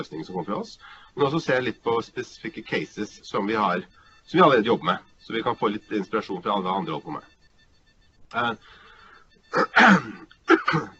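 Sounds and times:
speech: 0:00.0 - 0:07.3, 0:08.3 - 0:08.8, 0:09.5 - 0:10.9
short wheezy breath: 0:00.8 - 0:01.2, 0:03.9 - 0:04.3, 0:08.6 - 0:09.5
harsh coughs: 0:09.5 - 0:10.9.

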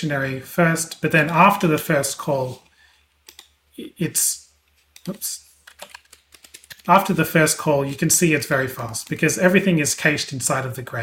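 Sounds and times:
speech: 0:00.0 - 0:02.6, 0:03.8 - 0:04.4, 0:05.0 - 0:05.4, 0:06.8 - 0:11.0
typing words on a computer keyboard: 0:03.2 - 0:03.5, 0:04.9 - 0:08.1, 0:08.7 - 0:09.5.

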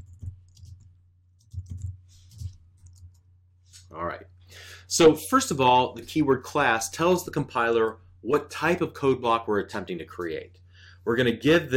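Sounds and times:
typing code on a computer keyboard: 0:00.0 - 0:03.3
speech: 0:03.9 - 0:11.7.

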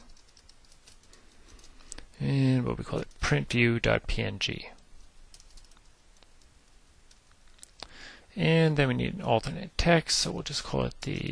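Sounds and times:
computer keyboard typing: 0:00.0 - 0:01.9, 0:04.8 - 0:07.3
speech: 0:02.2 - 0:04.8, 0:08.4 - 0:11.3.

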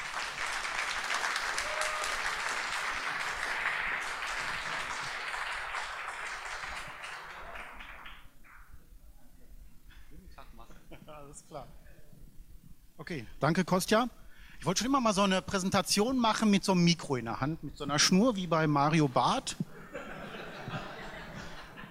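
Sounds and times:
applause from a large audience: 0:00.0 - 0:08.6
speech: 0:13.0 - 0:19.7
laughter: 0:19.6 - 0:21.8.

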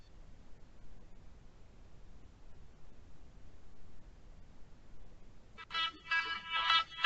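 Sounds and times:
steady low hiss: 0:00.0 - 0:07.0
phone ringing with an incoming verification call: 0:05.6 - 0:07.0.

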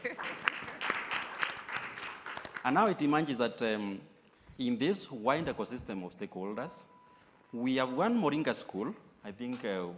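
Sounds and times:
audience applause at a speech event: 0:00.0 - 0:02.6
speech: 0:02.6 - 0:09.9.

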